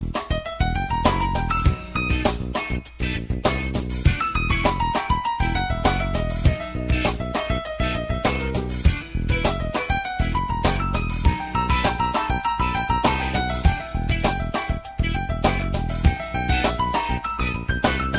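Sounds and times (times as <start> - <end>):
piano fusion electronica music: 0.0 - 18.1.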